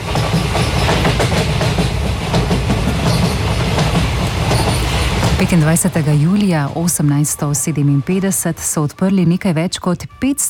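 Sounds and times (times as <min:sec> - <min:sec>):
train wheels clattering clickety-clack: 0:00.0 - 0:07.1
train rumbling on railway tracks: 0:00.0 - 0:09.0
speech: 0:05.4 - 0:10.4.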